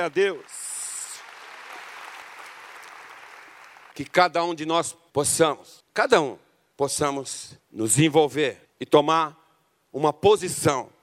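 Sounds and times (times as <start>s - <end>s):
speech: 0.0s - 0.6s, 4.0s - 11.0s
church audience applauding: 0.0s - 4.0s.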